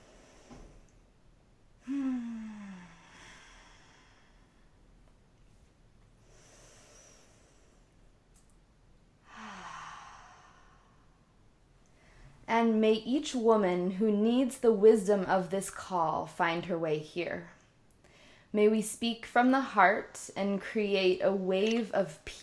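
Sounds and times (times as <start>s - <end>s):
slow deep breaths inhaling and exhaling: 0.0s - 1.1s, 1.8s - 5.0s, 6.2s - 8.1s, 9.2s - 12.5s, 18.0s - 18.5s
speech: 12.5s - 17.6s, 18.5s - 22.4s.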